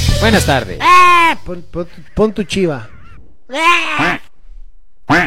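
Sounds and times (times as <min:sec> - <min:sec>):
speech: 0:00.2 - 0:04.2
small duck quacking: 0:01.9 - 0:04.3, 0:05.0 - 0:05.2.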